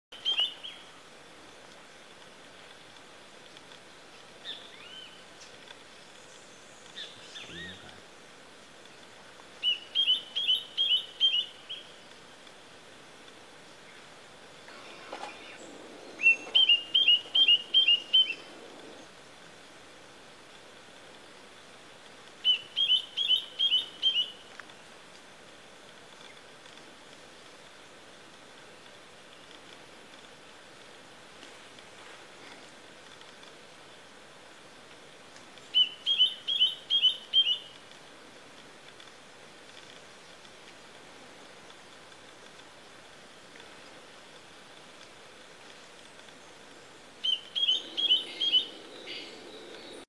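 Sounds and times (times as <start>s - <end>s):
chororo pocua bird singing: 0.1s - 0.9s, 4.2s - 7.9s, 9.6s - 12.0s, 13.8s - 19.1s, 22.4s - 24.5s, 35.7s - 37.8s, 47.2s - 50.0s.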